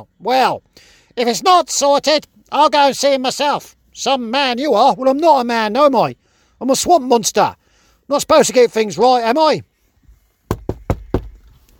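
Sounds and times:
speech: 0.0s - 9.7s
firm knocking on a door at night: 10.5s - 11.4s.

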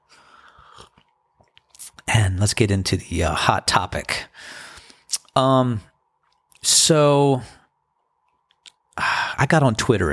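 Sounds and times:
person sipping tea: 0.2s - 2.0s
speech: 2.2s - 4.6s, 5.4s - 5.9s, 6.6s - 7.6s, 9.4s - 10.1s.

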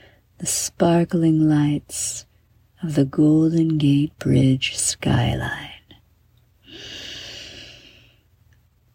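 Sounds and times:
speech: 0.4s - 5.7s
slow deep breath during a night-time guided meditation: 6.6s - 8.3s.

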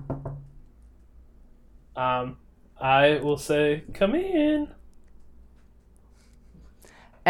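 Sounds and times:
knocking on a door: 0.0s - 0.6s
speech: 2.0s - 4.8s.

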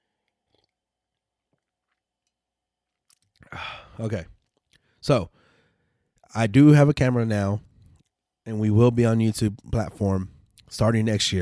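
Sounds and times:
person sipping a drink: 0.1s - 4.9s
speech: 3.7s - 4.4s, 5.0s - 5.4s, 6.3s - 7.7s, 8.5s - 11.4s.

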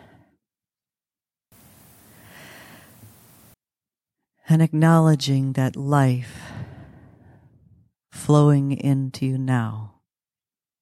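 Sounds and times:
deep breath in during a guided breathing exercise: 2.0s - 3.2s, 6.4s - 7.8s
speech: 4.5s - 6.5s, 8.3s - 9.9s.

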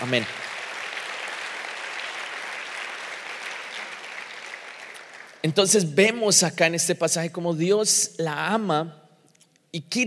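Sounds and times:
speech: 0.0s - 0.4s, 5.4s - 9.0s, 9.7s - 10.0s
large crowd applauding: 0.0s - 5.6s.

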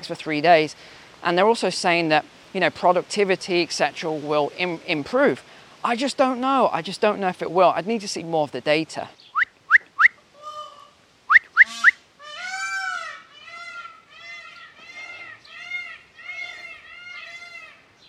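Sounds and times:
speech: 0.0s - 9.2s
peacocks calling with yelps and nasal wailing cries: 9.2s - 18.0s.

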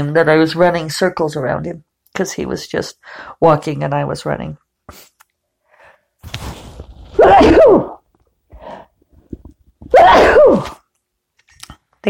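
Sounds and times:
speech: 0.0s - 5.1s
quiet breathing: 3.0s - 3.4s, 5.5s - 6.2s, 8.5s - 9.2s
person sneezing: 7.2s - 8.0s, 9.9s - 10.8s.

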